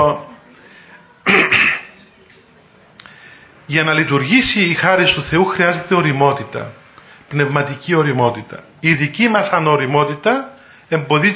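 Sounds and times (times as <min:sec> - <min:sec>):
speech: 0:00.0 - 0:00.3, 0:03.7 - 0:11.3
person with a cold coughing: 0:01.2 - 0:02.0.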